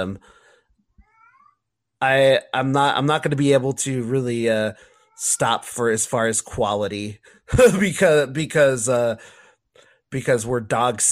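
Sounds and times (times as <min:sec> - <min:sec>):
speech: 0:00.0 - 0:00.4, 0:02.0 - 0:09.4, 0:10.1 - 0:11.1
faint cat meow inside a house: 0:01.0 - 0:01.6.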